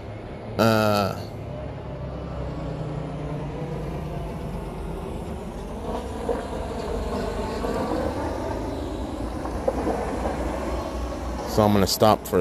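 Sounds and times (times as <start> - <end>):
heavy truck driving by with low-pitched engine drone: 0.0 - 12.3
speech: 0.6 - 1.4, 11.6 - 12.3.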